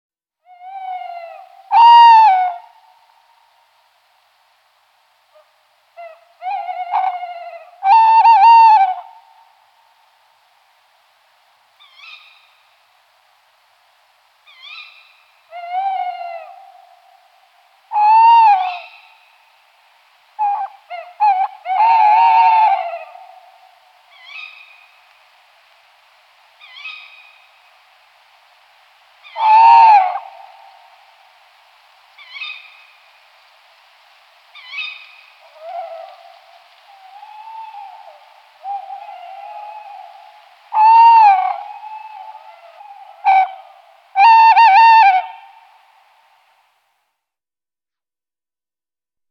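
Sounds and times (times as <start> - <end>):
two male and one female tawny owl calling: 0.4 - 2.7, 5.4 - 9.2, 11.8 - 12.5, 14.5 - 17.1, 17.9 - 19.2, 20.4 - 25.0, 26.6 - 27.5, 29.2 - 30.9, 32.2 - 32.9, 34.5 - 45.6.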